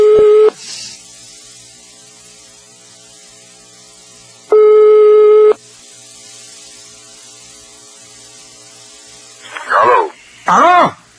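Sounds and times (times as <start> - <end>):
telephone ringing tone on the line: 0.0 - 0.5, 4.5 - 5.6
quiet telephone line hiss: 0.0 - 11.1.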